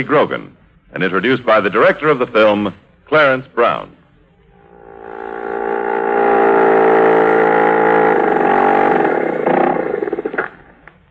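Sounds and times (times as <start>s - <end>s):
speech: 0.0s - 4.0s
outboard motor droning and sputtering: 4.7s - 10.6s.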